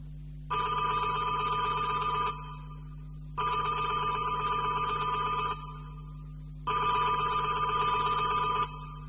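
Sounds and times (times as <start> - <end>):
telephone ringing at a monastery: 0.5 - 2.8, 3.4 - 6.0, 6.7 - 9.0.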